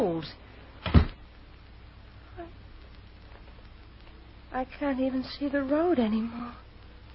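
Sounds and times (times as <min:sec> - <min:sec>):
speech: 0:00.2 - 0:00.4, 0:04.6 - 0:06.6
door shutting with a heavy thud: 0:00.8 - 0:01.2.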